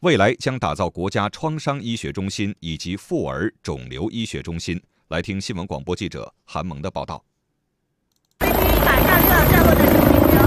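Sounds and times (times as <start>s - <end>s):
speech: 0.0s - 7.3s
rescue helicopter landing on a hospital helipad: 8.4s - 10.4s.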